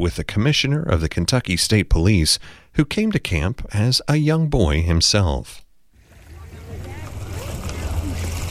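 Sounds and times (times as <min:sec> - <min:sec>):
speech: 0:00.0 - 0:05.6
lake water lapping gently against the shore: 0:05.9 - 0:08.4
faint voices: 0:06.0 - 0:08.4.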